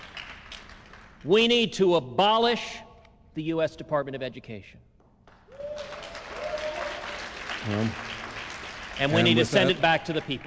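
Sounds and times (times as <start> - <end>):
speech: 1.2 - 2.8, 3.4 - 4.9, 7.6 - 8.1, 9.0 - 10.4
audience applause: 5.5 - 10.4.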